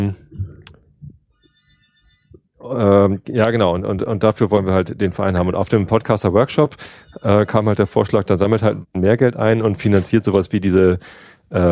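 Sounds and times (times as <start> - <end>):
faint electronic telephone ring with buzzy warbling tone: 1.3 - 2.6, 6.8 - 8.2
speech: 2.7 - 11.7.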